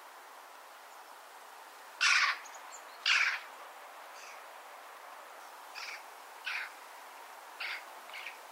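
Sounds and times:
Eurasian magpie Pica pica grating calls: 2.0s - 2.4s, 3.0s - 3.4s, 5.8s - 6.7s, 7.6s - 8.4s.

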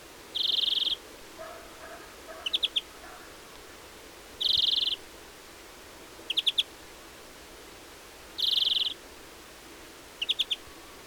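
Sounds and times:
European greenfinch Chloris chloris giving clipped chirps: 0.4s - 1.0s, 2.3s - 2.9s, 4.4s - 5.0s, 6.3s - 6.7s, 8.4s - 9.0s, 10.2s - 10.6s.

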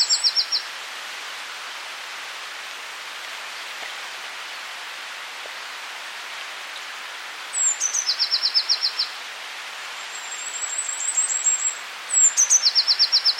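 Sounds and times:
Eurasian blue tit Cyanistes caeruleus song: 0.0s - 0.7s, 7.6s - 9.1s, 10.1s - 13.3s
steady background hiss: 0.0s - 13.3s.

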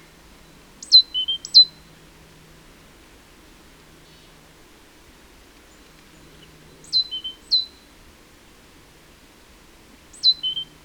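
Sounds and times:
great tit Parus major whistling call: 0.8s - 1.8s, 6.8s - 7.9s, 10.1s - 10.8s.

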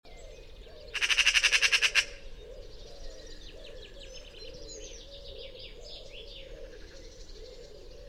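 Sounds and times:
Eurasian magpie Pica pica rattle call: 0.9s - 2.2s.

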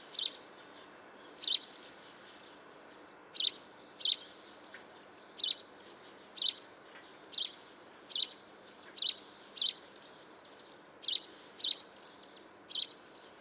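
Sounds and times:
house sparrow Passer domesticus giving loud clipped chirps: 0.1s - 0.4s, 1.2s - 2.4s, 3.3s - 4.4s, 5.4s - 5.6s, 6.4s - 6.7s, 7.3s - 10.1s, 11.0s - 13.0s.

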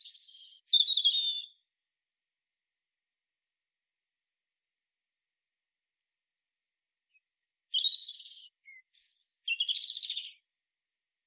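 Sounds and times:
European robin Erithacus rubecula singing: 0.0s - 1.7s, 7.1s - 10.5s.

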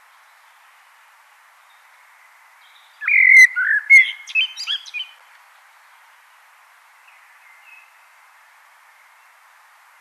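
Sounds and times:
background hiss: 0.0s - 9.9s
common blackbird Turdus merula singing: 2.6s - 5.2s.

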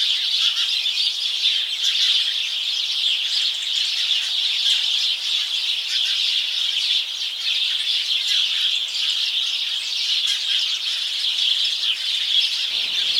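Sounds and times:
house sparrows chattering as a flock: 0.0s - 13.1s.

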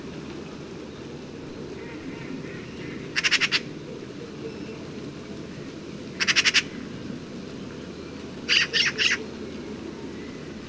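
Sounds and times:
low background hum: 0.0s - 10.6s
Eurasian magpie Pica pica chattering: 2.5s - 3.6s, 6.2s - 6.7s.

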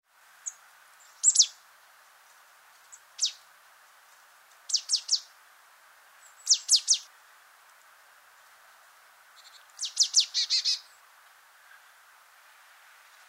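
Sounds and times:
marsh tit calling: 0.4s - 1.6s, 2.9s - 3.4s, 4.7s - 5.3s, 6.2s - 7.1s, 9.4s - 10.9s.

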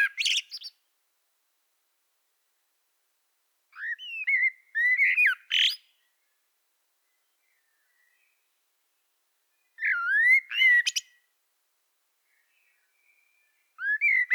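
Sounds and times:
common blackbird singing mellow fluted phrases: 0.0s - 0.8s, 3.8s - 6.4s, 9.5s - 11.2s, 12.2s - 14.3s.

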